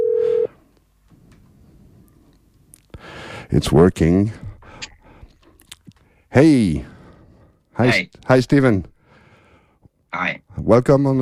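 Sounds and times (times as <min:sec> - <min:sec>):
brief loud electronic telephone tone of an outgoing call: 0:00.0 - 0:00.5
speech: 0:03.5 - 0:04.4, 0:06.4 - 0:06.9, 0:07.8 - 0:08.9, 0:10.2 - 0:11.1.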